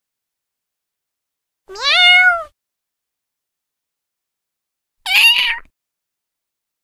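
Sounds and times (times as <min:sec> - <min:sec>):
domestic cat meowing: 0:01.7 - 0:02.6, 0:05.1 - 0:05.7.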